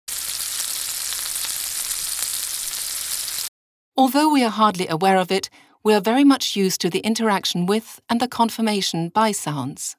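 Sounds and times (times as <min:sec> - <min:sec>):
French fries frying in a deep fryer: 0:00.1 - 0:03.5
speech: 0:04.0 - 0:09.9.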